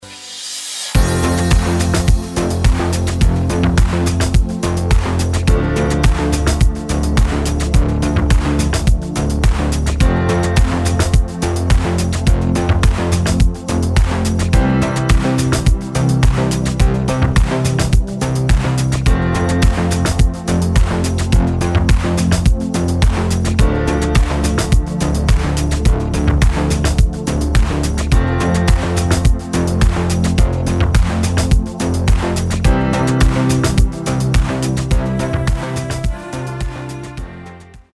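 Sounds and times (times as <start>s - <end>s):
emotive electronica music: 0.0s - 37.9s.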